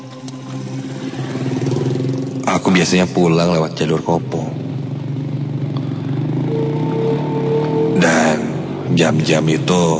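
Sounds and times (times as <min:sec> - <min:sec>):
motorcycle engine starting and idling: 0:00.0 - 0:09.4
speech: 0:02.6 - 0:04.6, 0:08.9 - 0:09.9.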